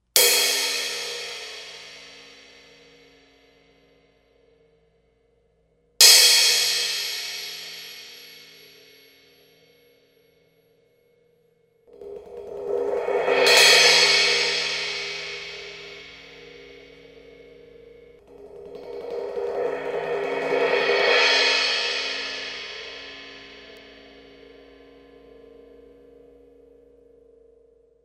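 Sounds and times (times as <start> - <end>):
Paiste Innovations thin crash cymbal 16: 0.2 - 3.4, 6.0 - 9.4, 12.1 - 25.6.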